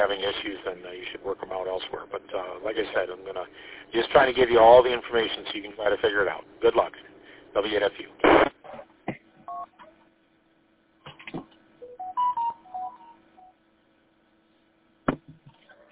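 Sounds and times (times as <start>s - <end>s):
speech: 0.0s - 8.9s
telephone keypad DTMF beeps from pressing the pound key over a phone line: 11.8s - 13.6s.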